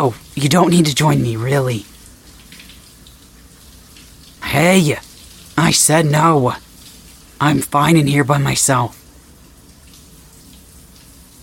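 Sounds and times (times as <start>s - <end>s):
speech: 0.0s - 1.9s, 4.5s - 6.6s, 7.4s - 9.0s
shower water running: 0.0s - 11.4s.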